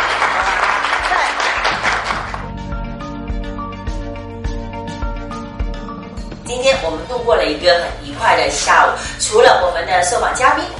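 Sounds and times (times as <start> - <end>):
audience applause: 0.0 - 2.6
tonal music: 0.0 - 10.7
speech: 6.9 - 10.7.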